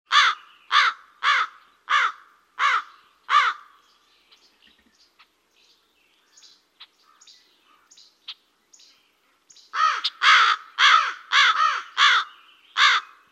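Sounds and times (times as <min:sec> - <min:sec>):
crow cawing: 0:00.1 - 0:03.8, 0:09.8 - 0:13.2.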